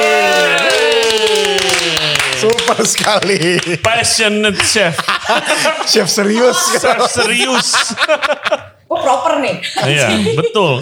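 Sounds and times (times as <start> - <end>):
voices holding sustained drawn-out tones: 0.0 - 1.0
people clapping hands: 0.0 - 4.9
speech: 2.4 - 10.7
laughter: 4.5 - 10.7.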